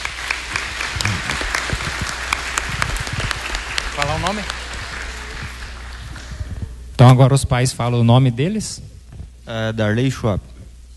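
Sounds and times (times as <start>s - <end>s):
sharp individual claps: 0.0s - 6.0s
crowd applauding: 0.0s - 6.8s
speech: 4.2s - 4.6s, 7.0s - 8.9s, 9.5s - 10.5s.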